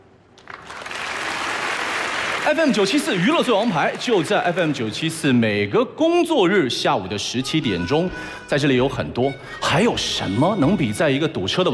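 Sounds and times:
crowd applause: 0:00.4 - 0:05.1
speech: 0:02.4 - 0:11.7.

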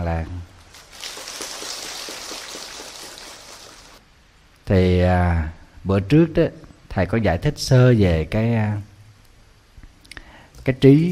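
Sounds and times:
speech: 0:00.1 - 0:00.5, 0:04.7 - 0:08.9, 0:10.6 - 0:11.0
heavy morning rain pouring: 0:00.7 - 0:04.0.

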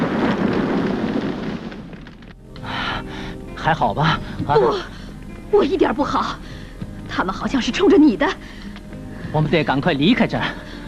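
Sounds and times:
car exploding in midair plunging toward the sea: 0:00.0 - 0:02.4
speech: 0:03.6 - 0:06.5, 0:07.2 - 0:08.6, 0:09.3 - 0:10.6.

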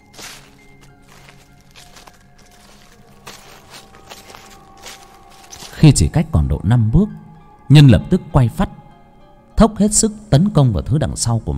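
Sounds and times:
footsteps rustling through dry leaves as someone approaches: 0:00.0 - 0:06.0
speech: 0:05.8 - 0:08.7, 0:09.6 - 0:11.5.

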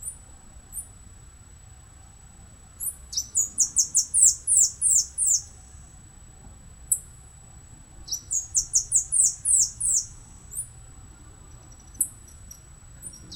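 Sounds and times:
faint background noise: 0:00.0 - 0:13.3
Saffron-billed Sparrow Arremon flavirostris calling: 0:02.8 - 0:05.6, 0:08.1 - 0:10.7, 0:11.9 - 0:13.3.

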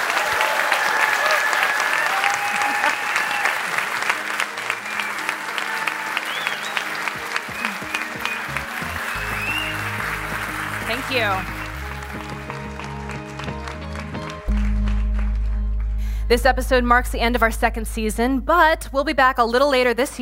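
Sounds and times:
audience applause for the guests at the close of a storytelling show: 0:00.0 - 0:15.9
speech: 0:11.1 - 0:11.5, 0:16.3 - 0:20.2.

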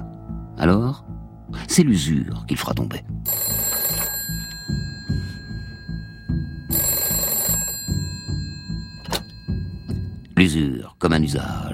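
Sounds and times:
speech: 0:00.6 - 0:03.4, 0:10.4 - 0:11.7
telephone bell ringing in a family home: 0:03.3 - 0:10.3.

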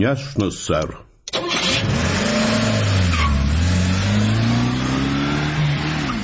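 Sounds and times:
speech: 0:00.0 - 0:01.1
car engine revving as the car drives off and accelerates: 0:01.4 - 0:06.2.

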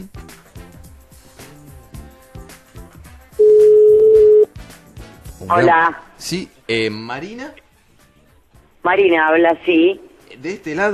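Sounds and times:
telephone tone while placing a call: 0:03.4 - 0:04.5
speech: 0:05.4 - 0:07.6, 0:08.8 - 0:10.9.

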